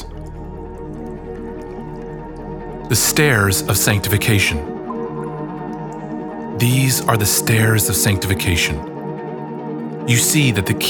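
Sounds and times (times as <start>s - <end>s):
water dripping and splashing: 0.0s - 6.5s
speech: 2.9s - 4.8s, 6.6s - 8.9s, 10.1s - 10.8s.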